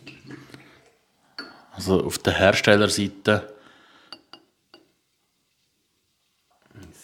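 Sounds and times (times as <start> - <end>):
small shot glasses clinking: 1.4 - 1.7, 4.1 - 4.9
speech: 1.8 - 3.6.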